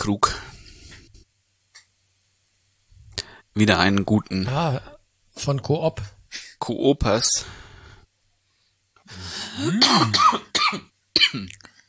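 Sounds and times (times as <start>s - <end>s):
speech: 0.0s - 0.4s, 3.6s - 7.7s, 9.1s - 11.7s
person coughing: 9.3s - 11.6s
harsh rasping throat clearing: 9.6s - 11.6s.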